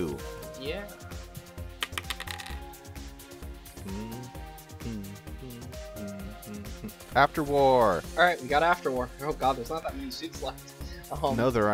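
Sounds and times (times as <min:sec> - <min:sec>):
speech: 0:00.0 - 0:01.1, 0:07.2 - 0:11.7
dice clattering across a hard surface: 0:01.8 - 0:02.7.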